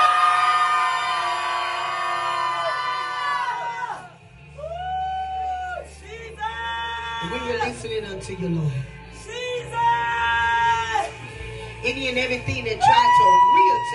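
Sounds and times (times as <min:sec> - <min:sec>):
large crowd screaming together: 0:00.0 - 0:07.6, 0:09.6 - 0:11.2, 0:12.8 - 0:13.9
speech: 0:07.2 - 0:09.0, 0:11.9 - 0:13.9.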